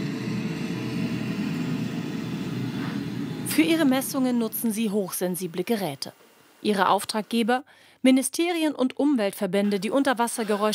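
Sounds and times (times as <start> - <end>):
deep ship engine rumble heard underwater: 0.0 - 4.8
underwater propeller cavitation from a ship passing overhead: 0.0 - 6.7
speech: 3.6 - 10.7.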